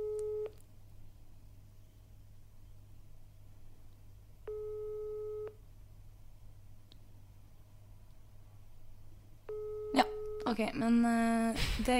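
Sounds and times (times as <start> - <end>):
phone ringback tone through an earpiece: 0.0 - 0.5, 4.5 - 5.6, 9.5 - 10.5
low constant hum: 0.0 - 11.9
speech: 10.5 - 11.9.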